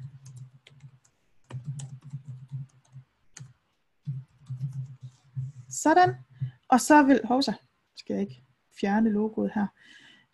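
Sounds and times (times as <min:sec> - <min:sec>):
computer keyboard typing: 0:00.0 - 0:06.7
speech: 0:05.7 - 0:10.0.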